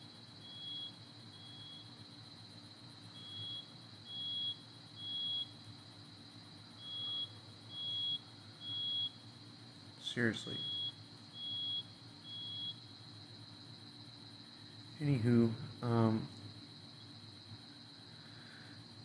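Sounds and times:
neighbor's smoke alarm beeping in high-pitched chirps: 0.0s - 1.9s, 3.1s - 5.6s, 6.8s - 9.2s, 10.5s - 12.9s
constant low hum: 0.0s - 19.0s
speech: 10.1s - 10.7s, 15.0s - 16.4s.

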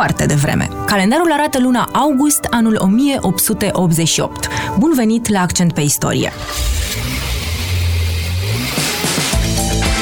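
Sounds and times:
speech: 0.0s - 7.1s
car engine starting and revving: 6.3s - 10.0s.

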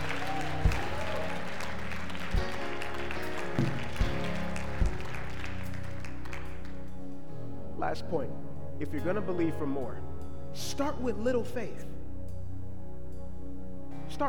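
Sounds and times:
large audience clapping and cheering: 0.0s - 6.9s
low steady musical tone: 0.0s - 14.2s
speech: 7.8s - 11.9s.

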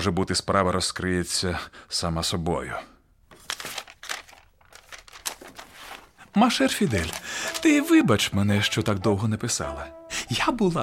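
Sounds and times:
speech: 0.0s - 2.9s, 6.4s - 10.8s
paper letter being unfolded and handled: 3.2s - 9.3s.

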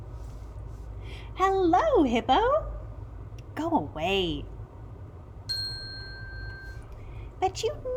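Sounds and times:
low rumble: 0.0s - 7.9s
speech: 1.4s - 2.7s, 3.6s - 4.5s, 7.4s - 7.9s
bright page-turn chime of a read-aloud picture book: 5.5s - 6.8s.

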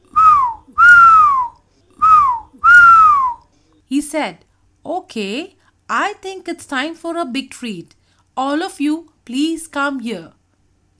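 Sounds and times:
bright sliding whistles gliding downward: 0.1s - 3.4s
speech: 3.9s - 10.4s.

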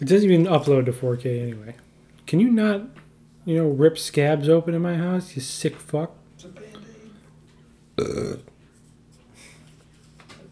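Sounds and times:
speech: 0.0s - 6.6s, 8.0s - 8.5s
faint noise: 0.0s - 10.4s
burp: 8.0s - 8.5s.

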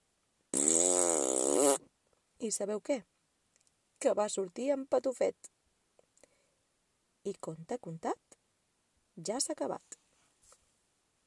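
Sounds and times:
ox farting: 0.5s - 1.8s
speech: 2.4s - 3.1s, 4.0s - 5.6s, 7.2s - 8.2s, 9.2s - 10.0s.

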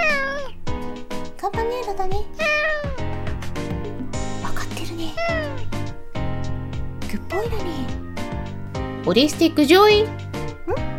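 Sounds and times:
pet house cat meowing: 0.0s - 0.7s, 2.2s - 3.2s, 4.6s - 6.3s
speech: 1.5s - 2.5s, 7.1s - 8.0s, 9.0s - 10.9s.

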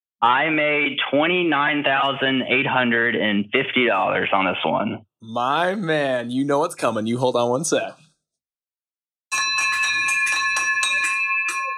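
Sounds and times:
speech: 0.2s - 8.0s
bright handbell ringing as a victory bell: 9.3s - 11.7s.

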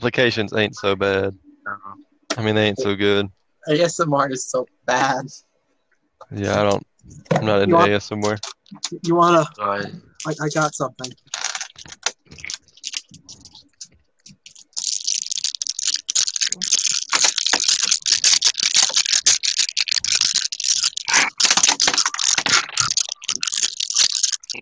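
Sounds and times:
speech: 0.0s - 5.5s, 6.2s - 12.5s
handful of dice rattling and clattering: 10.2s - 24.6s.

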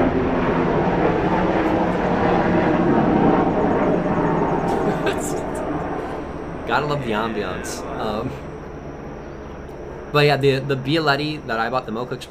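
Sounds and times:
military helicopter flying low overhead with heavy engine drone and chopping rotors: 0.0s - 12.2s
laughter: 4.7s - 5.7s, 6.7s - 8.4s
speech: 6.7s - 8.5s, 10.1s - 12.2s.

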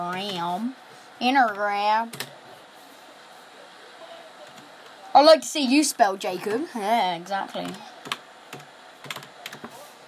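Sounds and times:
speech: 0.0s - 2.3s, 5.2s - 8.2s
typing on a computer keyboard: 8.0s - 9.7s.

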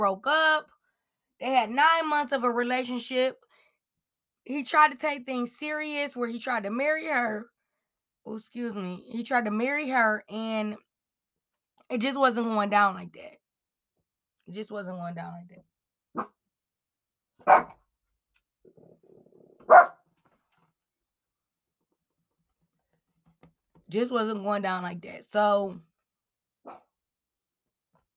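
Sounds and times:
speech: 0.0s - 0.7s, 1.4s - 3.5s, 4.4s - 7.5s, 8.2s - 10.9s, 11.9s - 13.4s, 14.5s - 16.4s, 17.4s - 17.8s, 23.9s - 25.9s
dog barking: 17.4s - 17.8s, 19.7s - 20.0s.

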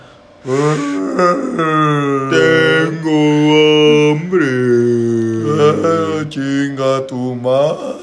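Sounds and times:
speech: 0.4s - 4.8s, 5.6s - 8.0s
person's voice imitating a whale call: 0.5s - 6.3s.

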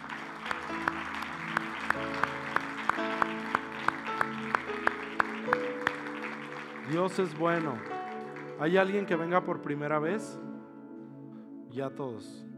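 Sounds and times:
dense crowd noise: 0.0s - 8.6s
audience clapping rhythmically: 0.0s - 9.2s
sustained keyboard music: 0.0s - 12.5s
speech: 6.9s - 7.9s, 8.6s - 10.5s, 11.7s - 12.5s.

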